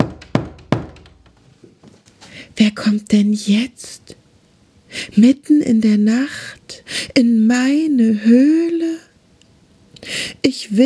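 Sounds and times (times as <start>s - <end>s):
sharp hard knocking on a door: 0.0s - 1.3s
speech: 2.6s - 4.2s, 5.1s - 9.0s, 10.5s - 10.8s.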